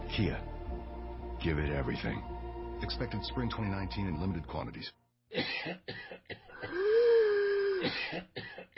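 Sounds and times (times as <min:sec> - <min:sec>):
speech: 0:00.1 - 0:00.5, 0:01.4 - 0:06.8, 0:07.8 - 0:08.7
person coughing harshly: 0:05.3 - 0:08.7.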